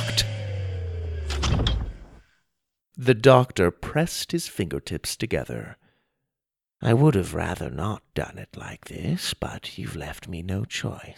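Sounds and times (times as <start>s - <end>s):
heavy metal doors sliding shut: 0.0s - 2.2s
grinding and clanking bursts: 1.2s - 2.2s
speech: 3.0s - 5.8s, 6.8s - 11.1s.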